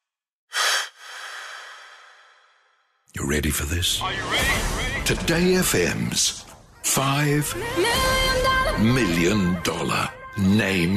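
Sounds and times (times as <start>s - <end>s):
deep breath taken before reading aloud: 0.5s - 3.0s
speech: 3.1s - 10.9s.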